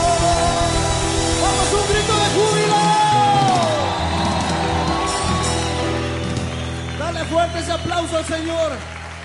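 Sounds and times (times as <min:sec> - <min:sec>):
whoops and cries: 0:00.1 - 0:07.8
crowd shouting and yelling: 0:00.2 - 0:08.7
speech: 0:08.0 - 0:08.9.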